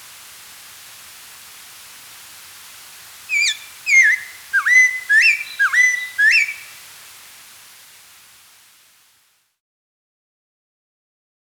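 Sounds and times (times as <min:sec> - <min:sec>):
spotted laughingthrush song of mellow whistled notes: 0:03.3 - 0:06.7.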